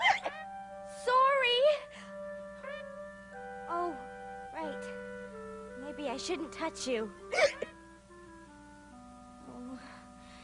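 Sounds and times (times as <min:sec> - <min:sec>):
single sharp short hiccup: 0:00.0 - 0:00.3, 0:07.3 - 0:07.8
light tinkling melody: 0:00.0 - 0:10.4
speech: 0:06.2 - 0:07.5.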